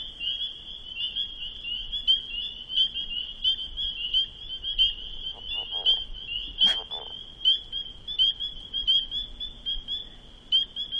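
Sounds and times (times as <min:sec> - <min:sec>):
steady high-pitched chorus of peeping frogs: 0:00.0 - 0:10.9
leopard frog giving a muffled gurgling croak underwater: 0:01.6 - 0:10.0.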